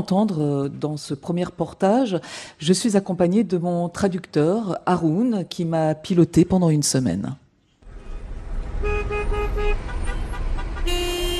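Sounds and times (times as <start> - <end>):
speech: 0.0 - 7.4
car horns tooting in a traffic jam in Kabul: 7.8 - 11.3
steady rumble of a traffic jam in Kabul: 7.8 - 11.3.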